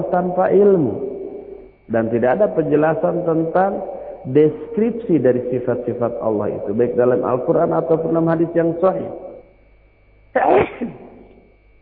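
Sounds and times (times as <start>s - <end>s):
speech: 0.0s - 1.1s, 1.9s - 9.3s, 10.3s - 11.0s
person sneezing: 10.4s - 11.3s.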